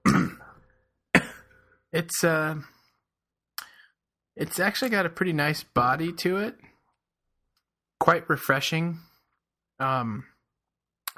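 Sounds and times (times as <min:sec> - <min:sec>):
person clearing throat with shellfish stuck in it: 0:00.0 - 0:01.6
speech: 0:01.9 - 0:02.8, 0:04.4 - 0:06.7, 0:08.0 - 0:09.1, 0:09.8 - 0:10.3.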